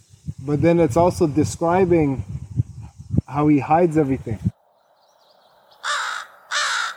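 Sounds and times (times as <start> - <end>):
speech: 0.4 - 2.3, 3.3 - 4.5
crow cawing: 5.8 - 6.9.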